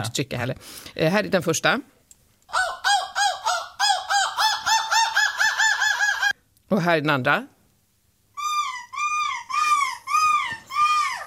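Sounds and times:
speech: 0.0s - 3.0s, 6.8s - 7.5s
person imitating a seagull's scream: 2.5s - 6.4s, 8.4s - 11.2s.

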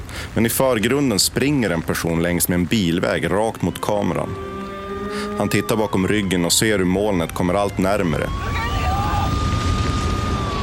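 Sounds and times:
speech: 0.4s - 4.6s, 5.4s - 8.6s
fire engine siren: 3.4s - 10.6s.

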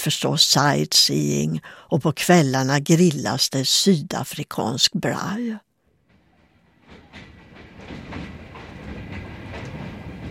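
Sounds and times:
speech: 0.0s - 5.7s
train rolling along the rails with clickety-clack: 5.9s - 10.3s.

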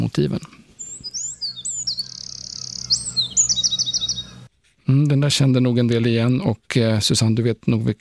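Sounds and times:
speech: 0.0s - 0.6s, 4.9s - 7.9s
Eurasian wren singing with whistles and buzzy trills: 0.8s - 4.5s.

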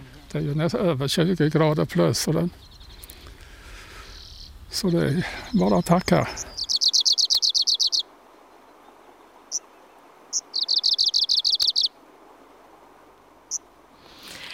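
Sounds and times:
speech: 0.3s - 2.8s, 4.7s - 6.5s
Arctic warbler singing dry trills on a hot summer day: 1.6s - 3.4s, 4.0s - 11.9s
single high Arctic warbler call notes: 6.4s - 8.1s, 9.5s - 12.0s.

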